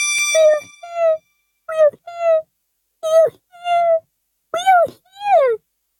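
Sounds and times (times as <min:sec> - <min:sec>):
high squeaky voice imitating tiny frightened voices crying out: 0:00.4 - 0:02.4, 0:03.0 - 0:04.0, 0:04.6 - 0:05.6.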